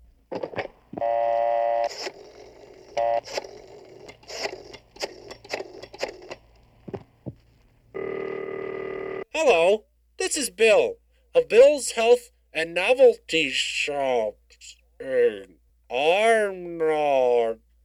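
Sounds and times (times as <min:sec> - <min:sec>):
loud sustained telephone ringing tone: 0:00.9 - 0:04.0, 0:07.9 - 0:09.3
telephone dialing with electronic tones, clicks and beeps: 0:00.9 - 0:06.5, 0:08.0 - 0:09.2
speech: 0:09.4 - 0:14.4, 0:15.0 - 0:17.6.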